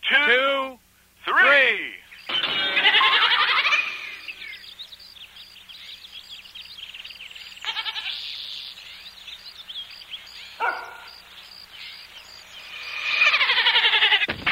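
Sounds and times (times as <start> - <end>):
speech: 0.3 - 0.8
goat bleating: 2.5 - 4.4, 7.6 - 8.2, 13.0 - 14.3.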